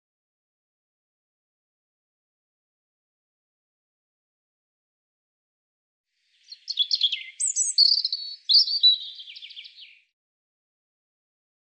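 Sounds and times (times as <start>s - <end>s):
European robin singing: 6.3s - 10.1s.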